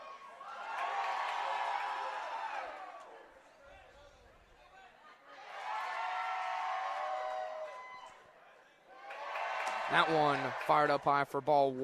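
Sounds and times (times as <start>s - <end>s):
large baseball crowd cheering and roaring: 0.0s - 3.4s, 5.3s - 8.3s, 8.9s - 11.8s
speech: 9.9s - 11.8s.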